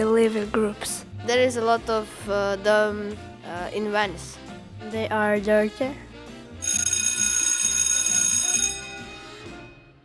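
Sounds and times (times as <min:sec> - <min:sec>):
speech: 0:00.0 - 0:06.1
bright electric bell ringing: 0:06.6 - 0:09.9.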